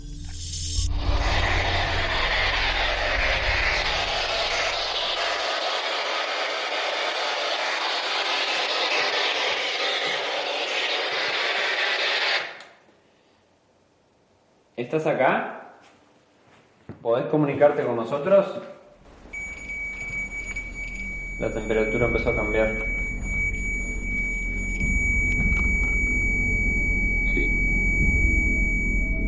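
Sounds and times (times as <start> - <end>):
low rumble: 0.7 - 5.6, 19.3 - 29.2
spirit box broadband radio static from an AM/FM sweep: 0.8 - 12.6
speech: 14.9 - 15.5, 17.1 - 18.8, 21.4 - 22.9.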